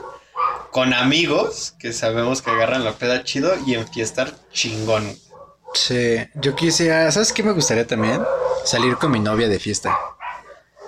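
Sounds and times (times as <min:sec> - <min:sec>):
dogs barking: 0:00.0 - 0:00.8, 0:02.3 - 0:04.2, 0:05.2 - 0:10.8
speech: 0:00.7 - 0:05.2, 0:05.8 - 0:10.1.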